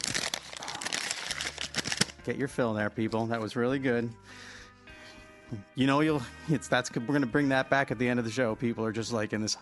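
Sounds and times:
paper crinkling: 0:00.0 - 0:02.2
speech: 0:02.3 - 0:04.5, 0:05.5 - 0:09.6.

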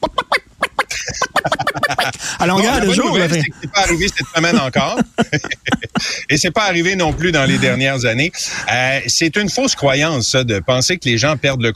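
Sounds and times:
person imitating hen clucking and squawking: 0:00.0 - 0:06.2
laughter: 0:00.0 - 0:09.7
speech: 0:02.4 - 0:11.7.

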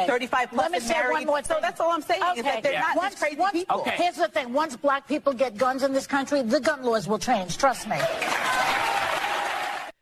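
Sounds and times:
speech: 0:00.0 - 0:08.6
studio audience applause: 0:07.9 - 0:09.9.

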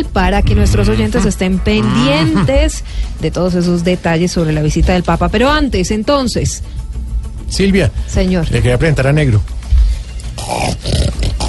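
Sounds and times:
speech: 0:00.0 - 0:06.8, 0:07.5 - 0:09.6
small dog growling: 0:10.4 - 0:11.4.

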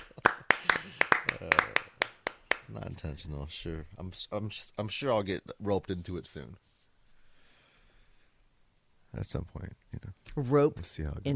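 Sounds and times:
small group of people clapping: 0:00.0 - 0:02.8
speech: 0:02.8 - 0:06.7, 0:09.2 - 0:11.3.

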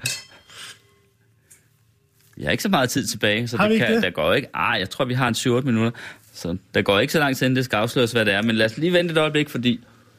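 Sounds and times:
wine glasses clinking in a toast: 0:00.0 - 0:00.6
speech: 0:02.4 - 0:09.9.

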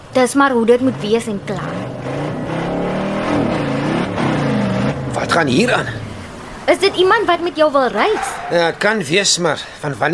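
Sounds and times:
speech: 0:00.2 - 0:02.2, 0:05.2 - 0:06.0, 0:06.7 - 0:10.1
racing car engine revving: 0:00.6 - 0:08.5.

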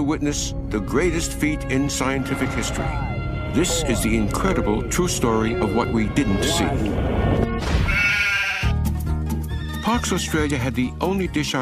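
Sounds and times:
speech: 0:00.0 - 0:07.8, 0:09.9 - 0:11.6
sheep bleating: 0:07.9 - 0:08.8.

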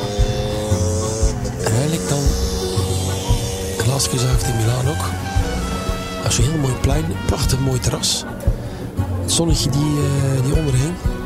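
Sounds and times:
small scooter engine buzzing and revving: 0:00.0 - 0:06.9
speech: 0:04.1 - 0:05.3, 0:06.2 - 0:08.5, 0:09.3 - 0:11.2.

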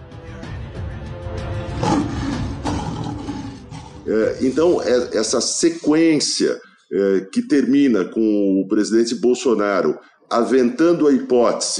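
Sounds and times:
hyenas growling and snarling in a scuffle with a lion: 0:01.8 - 0:04.9
lion roaring: 0:01.8 - 0:05.2
speech: 0:04.1 - 0:11.7.

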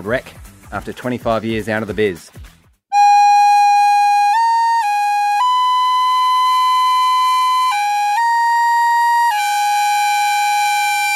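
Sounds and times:
speech: 0:00.0 - 0:02.4
recorder played to imitate bagpipes: 0:02.9 - 0:11.1.

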